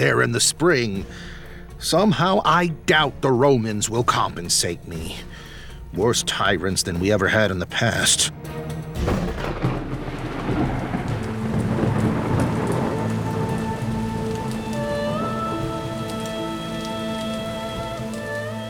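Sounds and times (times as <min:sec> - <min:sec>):
speech: 0:00.0 - 0:09.2
low rumbles of thunder: 0:09.0 - 0:18.6
steady heavy rain downpour: 0:09.1 - 0:18.6.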